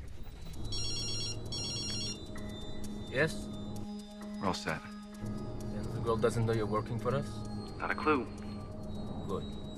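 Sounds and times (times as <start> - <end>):
telephone ringing through a handset on an outgoing call: 0.6 - 2.4
speech: 3.1 - 3.6, 4.4 - 8.4, 9.3 - 9.6.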